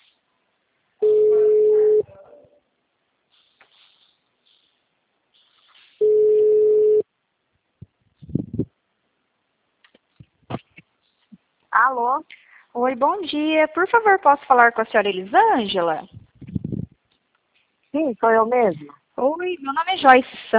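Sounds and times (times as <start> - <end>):
telephone ringback tone while a call is placed: 1.0 - 2.1, 6.0 - 7.0
speech: 11.8 - 16.1, 18.0 - 20.5.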